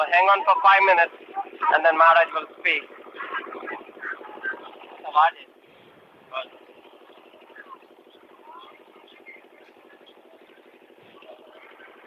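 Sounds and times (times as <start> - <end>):
speech: 0.0 - 3.4, 5.2 - 5.5
boat motor rumbling: 0.0 - 12.0.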